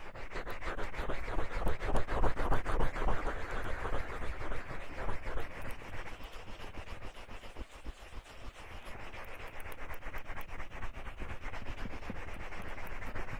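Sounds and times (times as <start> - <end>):
ears being massaged, rubbing and scratching at the microphone: 0.0 - 13.3.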